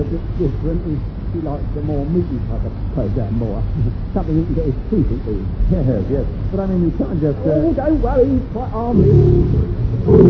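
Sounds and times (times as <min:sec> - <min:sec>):
speech: 0:00.1 - 0:10.2
lion's deep rumbling roar: 0:09.0 - 0:10.2.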